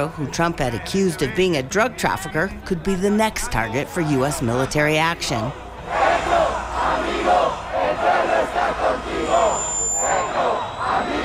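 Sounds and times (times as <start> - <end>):
speech: 0.0 - 5.6
large crowd chanting at a rally: 5.7 - 11.2
many voices shouting together at a rally: 5.9 - 11.2
faint high whistle-like tone: 9.2 - 11.2.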